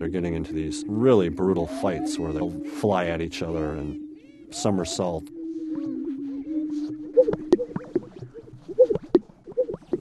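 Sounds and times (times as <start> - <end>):
speech: 0.0 - 5.9
Greater Sage-Grouse swishing wings over stiff white breast feathers: 6.7 - 10.0.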